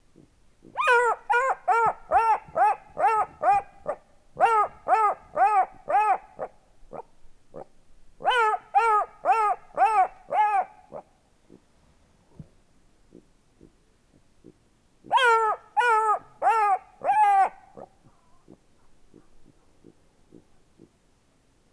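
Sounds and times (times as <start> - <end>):
black-backed jackal Canis mesomelas barking: 0.7 - 11.0, 15.1 - 17.9.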